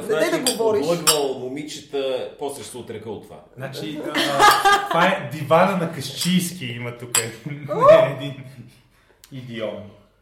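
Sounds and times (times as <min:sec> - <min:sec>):
speech: 0:00.1 - 0:10.0
glasses clinking together in a toast: 0:00.4 - 0:01.4, 0:04.4 - 0:04.8, 0:06.1 - 0:07.4
laughter: 0:03.9 - 0:05.3.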